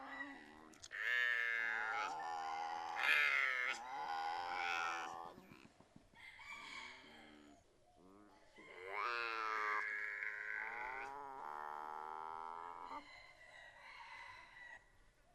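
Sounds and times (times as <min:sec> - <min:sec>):
binturong moaning calls: 0:00.0 - 0:05.6, 0:07.1 - 0:13.0.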